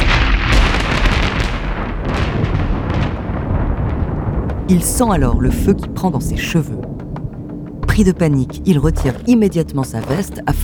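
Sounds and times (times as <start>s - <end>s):
lightning bolt striking a man at a building site: 0.0s - 4.8s
speech: 4.7s - 7.0s, 8.0s - 10.6s.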